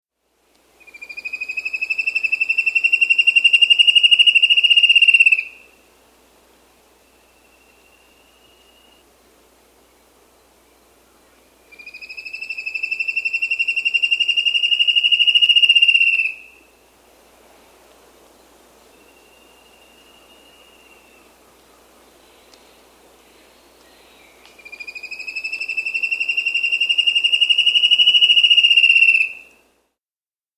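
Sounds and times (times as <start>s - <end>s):
Spot-backed Antshrike calling in South America: 0.8s - 5.6s, 11.7s - 16.5s, 24.6s - 29.5s.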